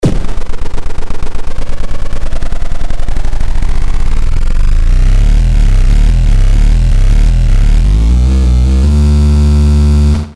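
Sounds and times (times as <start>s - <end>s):
car engine: 3.5s - 10.2s.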